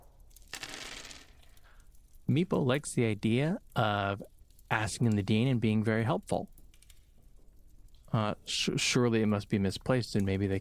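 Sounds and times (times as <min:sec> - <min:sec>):
dice rattling across a table: 0:00.3 - 0:01.5
speech: 0:02.3 - 0:06.6, 0:08.1 - 0:10.5.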